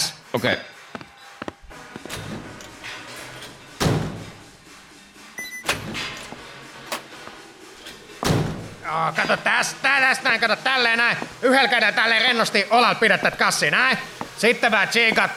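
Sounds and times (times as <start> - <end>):
speech: 0.3 - 0.7, 8.9 - 15.3
solid door thumps: 8.2 - 8.8.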